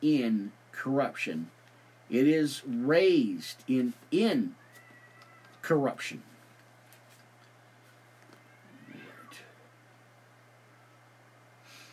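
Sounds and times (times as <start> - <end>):
speech: 0.0 - 4.6, 5.6 - 6.3
hiss: 0.0 - 11.9
steady low hum: 0.0 - 11.9
two cats fighting and yowling outdoors in a backyard: 4.6 - 5.7, 8.2 - 9.7.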